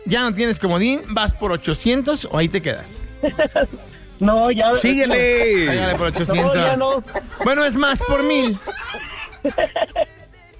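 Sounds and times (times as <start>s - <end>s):
speech: 0.1s - 10.1s
laughter: 3.2s - 4.0s, 4.8s - 10.3s
rooster or chicken clucking: 5.1s - 9.6s.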